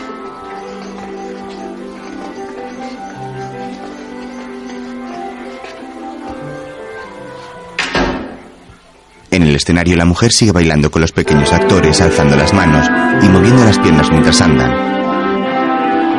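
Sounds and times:
steady music: 0.0 - 16.1
bathroom door pulled shut: 7.8 - 8.7
speech: 9.4 - 15.0.

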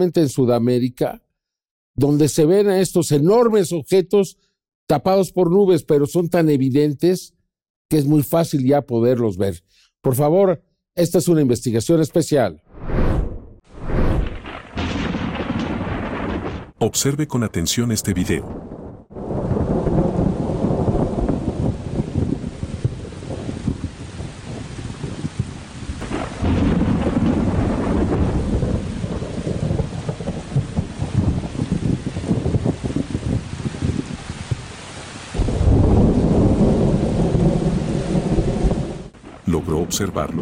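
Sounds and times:
speech: 0.0 - 1.2, 2.0 - 13.1, 16.8 - 18.8, 40.0 - 40.4
gusty wind: 12.7 - 16.3, 18.4 - 34.8
deep rolling thunder: 12.8 - 16.8, 18.3 - 34.2, 35.4 - 40.4
steady rain in a thunderstorm: 18.1 - 40.4.

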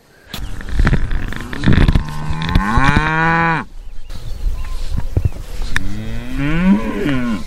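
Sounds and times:
heifers mooing behind a fence: 1.0 - 3.7, 5.8 - 7.4.

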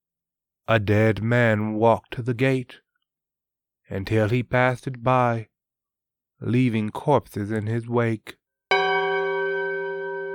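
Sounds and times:
speech: 0.7 - 2.8, 3.9 - 5.5, 6.4 - 8.4
single deep church bell strike: 8.7 - 10.3.

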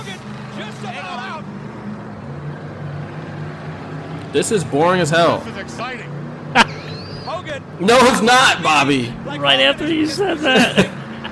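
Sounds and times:
heavy truck engines roaring: 0.0 - 11.3
speech: 4.4 - 6.6, 7.8 - 11.0
laughter: 6.5 - 8.2, 9.8 - 11.3.

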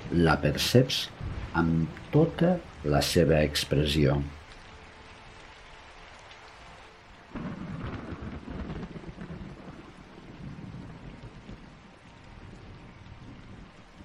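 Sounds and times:
thunder rumbling: 0.0 - 4.0, 7.3 - 14.0
heavy rain: 0.0 - 14.0
speech: 0.2 - 4.4.

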